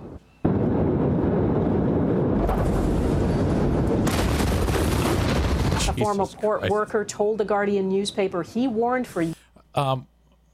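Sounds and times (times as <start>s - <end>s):
fireworks crackling and popping in a dense barrage: 0.4s - 6.2s
speech: 6.0s - 10.1s.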